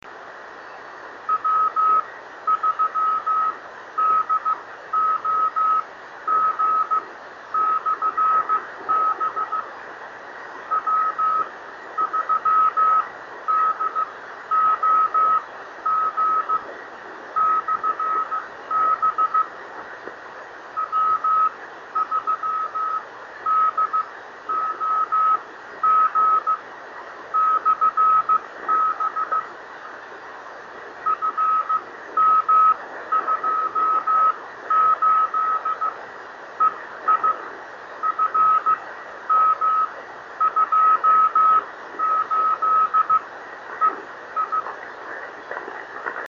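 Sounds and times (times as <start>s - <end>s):
50.072 MHz E-skip ham radio beacon signal: 1.3s - 9.7s, 10.7s - 16.7s, 17.4s - 19.5s, 20.8s - 26.6s, 27.3s - 29.5s, 31.0s - 36.0s, 36.6s - 37.4s, 38.0s - 44.8s.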